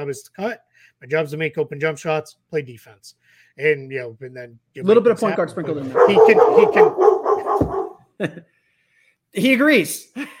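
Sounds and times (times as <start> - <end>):
speech: 0.0 - 7.2, 8.2 - 8.5, 9.3 - 10.3
two dogs barking at a doorbell: 5.8 - 8.1.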